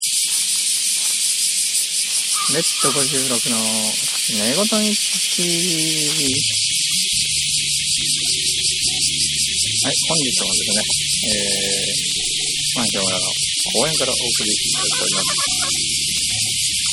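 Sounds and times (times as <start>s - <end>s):
cicadas buzzing in a park: 0.0s - 16.9s
speech: 2.4s - 6.8s, 8.0s - 16.2s
laughter: 2.5s - 6.5s, 9.8s - 12.0s, 12.8s - 15.9s.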